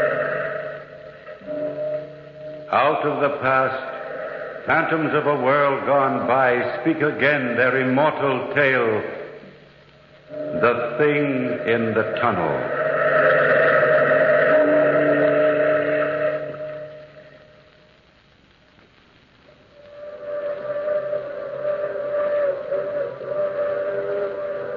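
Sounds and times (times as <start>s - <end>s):
long moaning whistle of a through express train: 0.0s - 6.6s, 10.3s - 17.4s, 19.8s - 24.7s
speech: 2.7s - 3.9s, 4.7s - 9.2s, 10.6s - 12.8s.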